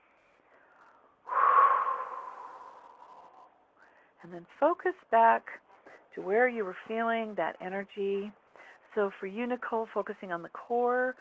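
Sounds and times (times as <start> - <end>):
deep breath in and out during a guided relaxation exercise: 0.5 - 4.2
speech: 4.2 - 8.4, 9.0 - 11.1.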